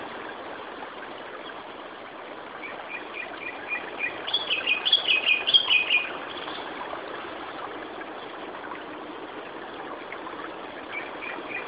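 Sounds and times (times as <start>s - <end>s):
Japanese thrush Turdus cardis whistled song: 2.6s - 6.7s, 10.9s - 11.6s.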